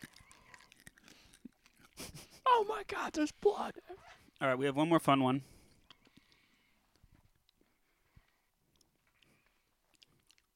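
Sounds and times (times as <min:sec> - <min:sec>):
chewing sweet potato candy: 0:00.0 - 0:02.4, 0:05.5 - 0:10.5
crisp crunching of sweet potato candy being bitten into: 0:00.0 - 0:02.4, 0:08.7 - 0:10.5
speech: 0:02.6 - 0:05.5.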